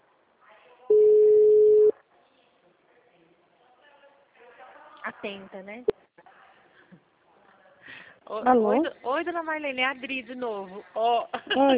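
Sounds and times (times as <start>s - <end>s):
call ringing tone beep: 0.9s - 1.9s
speech: 5.1s - 6.0s, 8.3s - 11.7s.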